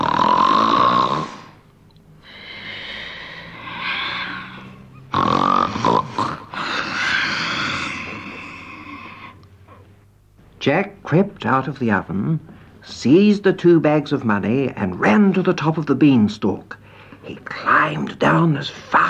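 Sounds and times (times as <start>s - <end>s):
voice imitating a giant's loud exaggerated snoring: 0.0s - 1.6s, 2.3s - 9.4s
speech: 10.7s - 19.0s.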